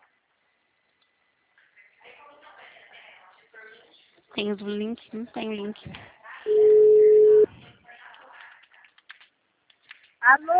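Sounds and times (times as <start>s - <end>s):
faint noise: 0.0s - 10.5s
speech: 4.4s - 6.6s, 10.3s - 10.5s
telephone busy tone after a dropped call: 6.5s - 7.5s.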